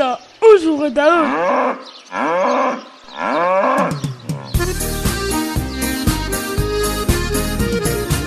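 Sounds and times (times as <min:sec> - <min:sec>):
speech: 0:00.2 - 0:04.0
cow mooing: 0:01.2 - 0:04.6
upbeat music with a steady beat: 0:04.2 - 0:08.2.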